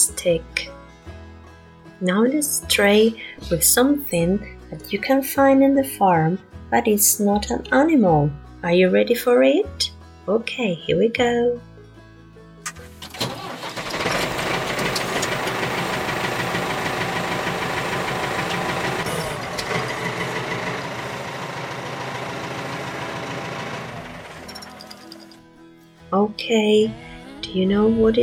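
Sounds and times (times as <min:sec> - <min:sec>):
speech: 0:00.0 - 0:00.7, 0:02.0 - 0:11.7, 0:26.5 - 0:28.2
farm tractor engine starting and running: 0:13.0 - 0:25.6.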